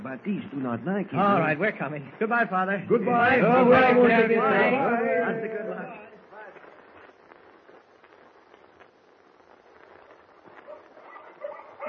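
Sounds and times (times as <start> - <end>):
speech: 0.0 - 6.1
noisy outdoor background: 0.0 - 11.8
pack of huskies barking and yelping: 10.6 - 11.8.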